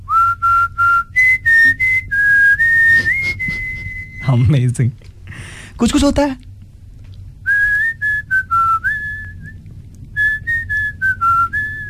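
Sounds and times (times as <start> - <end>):
whistled romantic film song melody: 0.0 - 4.3, 7.5 - 9.6, 10.2 - 11.8
speech: 4.3 - 5.1, 5.8 - 6.5.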